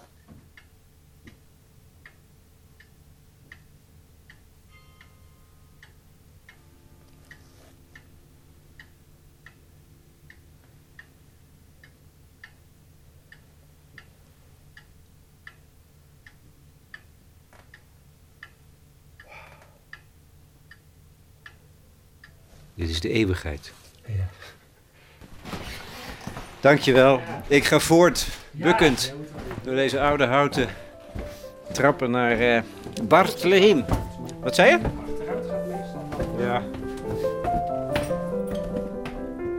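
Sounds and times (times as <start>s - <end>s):
low mechanical hum: 0.0s - 39.5s
pendulum clock ticking: 1.9s - 23.4s, 29.8s - 35.6s
faint chime: 4.7s - 5.8s
speech: 22.8s - 23.8s, 26.6s - 30.8s, 31.8s - 35.0s.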